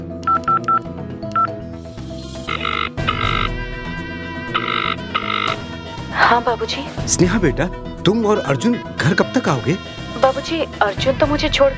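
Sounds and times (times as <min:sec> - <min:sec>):
steady musical background: 0:00.0 - 0:11.7
telephone keypad dialing tones: 0:00.2 - 0:01.6, 0:02.5 - 0:03.6, 0:04.5 - 0:05.6
speech: 0:06.3 - 0:11.7.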